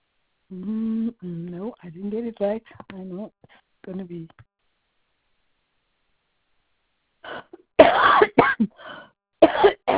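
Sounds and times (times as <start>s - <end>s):
speech: 0.5s - 4.5s, 7.2s - 9.9s
person coughing in harsh bursts: 7.3s - 9.9s.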